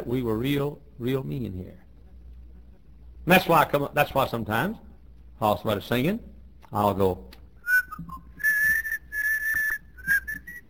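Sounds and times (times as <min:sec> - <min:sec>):
speech: 0:00.1 - 0:01.8, 0:03.2 - 0:07.4, 0:08.0 - 0:08.2
person whistling a tune: 0:07.6 - 0:10.6.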